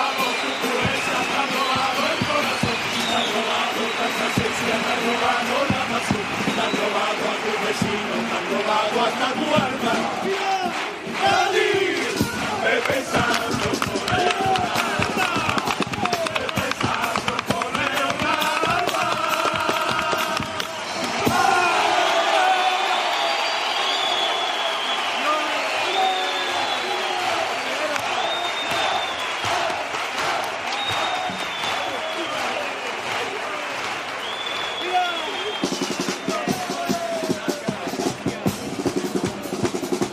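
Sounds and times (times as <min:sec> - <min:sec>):
audience whistles: 0:00.0 - 0:07.2, 0:20.4 - 0:29.8, 0:30.6 - 0:32.9, 0:34.1 - 0:36.9
large audience applauding: 0:00.0 - 0:40.0
crowd shouting cheers: 0:00.0 - 0:40.1.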